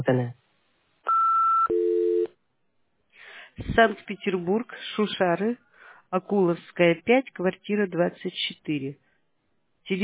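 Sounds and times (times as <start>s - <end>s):
speech: 0.0s - 0.4s, 3.6s - 9.0s
answering machine two-note electronic beep: 1.1s - 2.3s.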